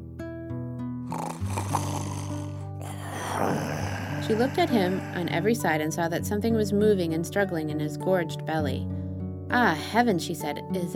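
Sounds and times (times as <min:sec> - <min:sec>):
wolf snoring loudly: 0:01.1 - 0:05.6
speech: 0:04.3 - 0:10.9.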